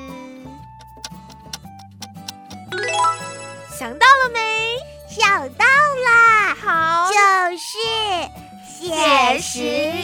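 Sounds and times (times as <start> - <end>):
clock ticks in music imitating clockwork: 0.8 - 3.7
sustained musical tones: 2.7 - 4.3
speech: 3.8 - 10.0.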